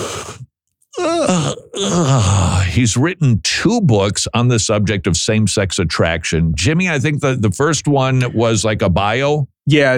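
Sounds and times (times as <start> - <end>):
person imitating a yawn: 0.0 - 2.7
speech: 1.0 - 9.9.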